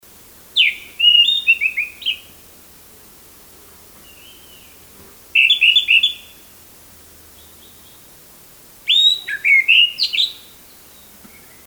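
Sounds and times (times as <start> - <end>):
orange-headed thrush singing: 0.6 - 2.5, 4.0 - 6.6, 7.3 - 8.1, 8.8 - 11.6.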